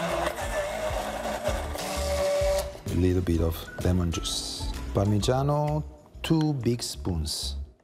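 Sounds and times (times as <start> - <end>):
blender blending Caesar dressing with anchovy paste and garlic: 0.0 - 2.7
speech: 3.0 - 7.6.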